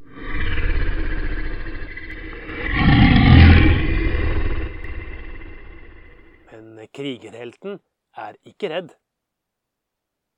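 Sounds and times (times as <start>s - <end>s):
lion growling: 0.0s - 6.4s
speech: 7.0s - 9.0s.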